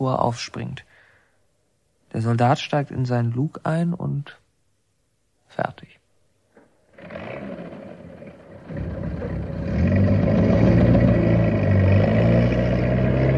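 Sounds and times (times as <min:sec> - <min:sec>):
speech: 0:00.0 - 0:00.9, 0:02.1 - 0:04.4, 0:05.5 - 0:06.0
tank engine rumbling as the tank drives off: 0:07.0 - 0:13.3.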